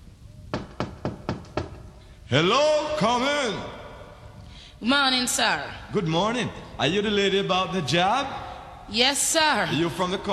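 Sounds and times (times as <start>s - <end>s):
firm knocks on a wooden door: 0.5s - 1.9s
speech: 2.3s - 3.8s, 4.8s - 10.3s.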